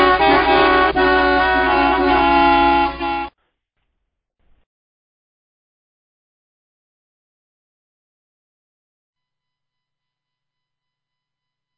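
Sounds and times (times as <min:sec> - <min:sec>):
several car horns honking: 0:00.0 - 0:03.4.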